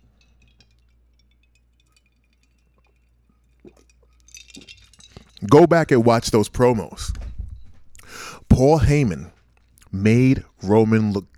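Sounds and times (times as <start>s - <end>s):
small glassy clinks and light taps: 0.0s - 9.7s
person slurpy sipping a drink: 2.6s - 5.4s, 7.9s - 8.5s
speech: 5.4s - 7.1s, 8.6s - 9.3s, 9.9s - 11.3s
soft wet swallowing noises: 7.1s - 8.6s.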